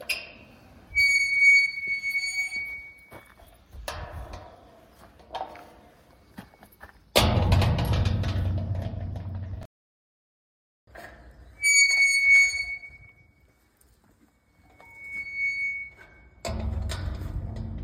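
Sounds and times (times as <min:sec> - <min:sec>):
entrance gate opening and closing: 0:00.0 - 0:03.1, 0:07.2 - 0:09.7, 0:10.9 - 0:13.4, 0:14.8 - 0:17.8.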